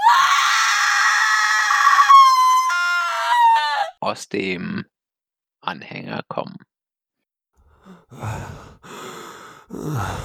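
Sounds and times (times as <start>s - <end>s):
piercing shrill scream: 0.0s - 4.0s
speech: 4.1s - 4.9s, 5.6s - 6.7s, 8.1s - 8.7s, 9.7s - 10.2s.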